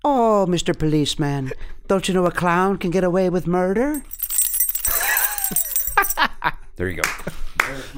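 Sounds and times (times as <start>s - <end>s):
speech: 0.4s - 4.2s, 5.5s - 5.7s, 6.8s - 7.9s
handcuffs jangling in a metallic rattle: 4.0s - 6.2s.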